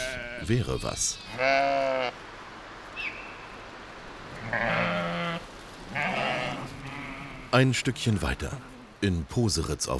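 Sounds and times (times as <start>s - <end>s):
grey Pomeranian sheep bleating: 0.0s - 0.5s, 1.2s - 2.2s, 4.4s - 7.6s
outdoor hiss: 0.0s - 9.9s
speech: 0.4s - 2.2s, 4.5s - 4.8s, 7.5s - 9.9s.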